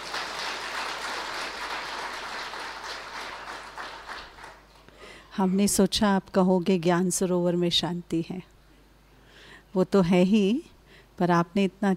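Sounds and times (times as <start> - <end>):
large crowd applauding: 0.0 - 4.8
speech: 5.4 - 8.5, 9.8 - 11.9.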